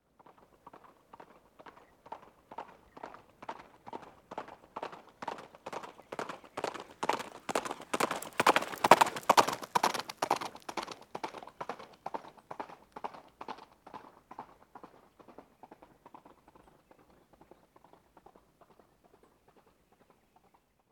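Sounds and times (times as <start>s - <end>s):
horse galloping on gravel: 0.3s - 20.2s.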